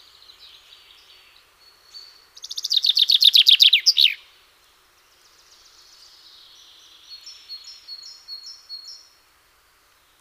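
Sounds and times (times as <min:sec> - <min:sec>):
common chaffinch singing: 0:00.0 - 0:04.4, 0:05.0 - 0:09.2.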